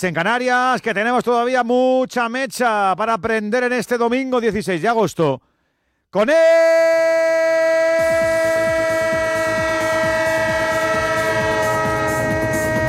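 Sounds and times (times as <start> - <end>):
speech: 0.0 - 5.5, 6.1 - 7.6
train horn holding a steady bright chord: 8.0 - 12.8.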